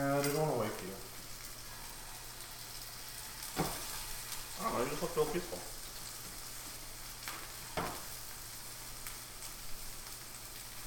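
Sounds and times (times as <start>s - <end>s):
speech: 0.0s - 1.1s, 4.8s - 5.8s
bacon sizzling in a pan during breakfast cooking: 0.0s - 10.8s.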